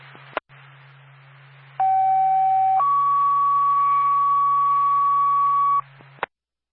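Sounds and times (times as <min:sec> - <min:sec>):
low hum: 0:00.0 - 0:06.3
fire dispatch two-tone page over a radio: 0:01.8 - 0:05.8.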